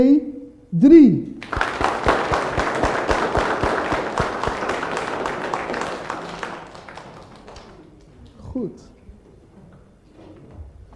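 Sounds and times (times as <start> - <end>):
speech: 0.0 - 1.6, 8.6 - 8.9
church audience applauding for the church's 60th anniversary: 1.4 - 8.5.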